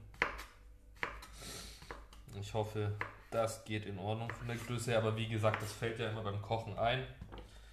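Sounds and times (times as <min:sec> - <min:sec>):
knife slicing mushrooms on a cutting board: 0:00.0 - 0:02.2, 0:02.9 - 0:03.5, 0:04.1 - 0:05.8
speech: 0:02.4 - 0:07.2.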